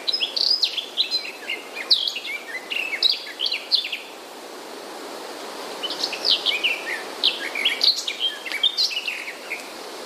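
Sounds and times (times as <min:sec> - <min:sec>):
garden warbler singing chirps, trills and whistled notes: 0:00.0 - 0:04.1, 0:05.8 - 0:09.7
faint steady background hiss: 0:00.0 - 0:10.0.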